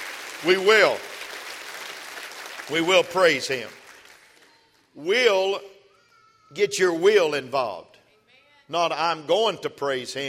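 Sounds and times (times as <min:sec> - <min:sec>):
crowd clapping: 0:00.0 - 0:05.0
speech: 0:00.4 - 0:01.1, 0:02.7 - 0:03.8, 0:05.0 - 0:05.7, 0:06.5 - 0:08.0, 0:08.7 - 0:10.2.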